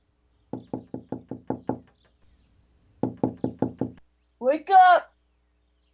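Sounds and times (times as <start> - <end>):
sharp hollow knocking on a door: 0.5 - 2.0, 3.0 - 4.0
speech: 4.4 - 5.1.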